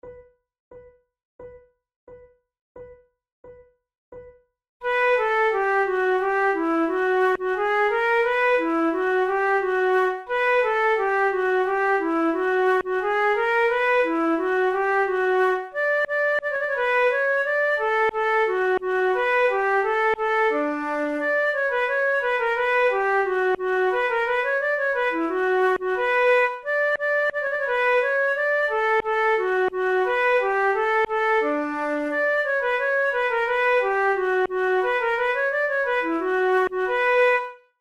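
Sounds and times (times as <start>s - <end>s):
two flutes playing a gavotte: 4.9s - 37.6s.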